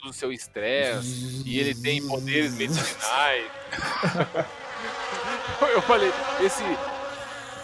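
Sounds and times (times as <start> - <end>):
speech: 0.0 - 7.0
human voice imitating a thin whining mosquito-like buzz: 0.8 - 3.1
laughter: 2.3 - 7.6.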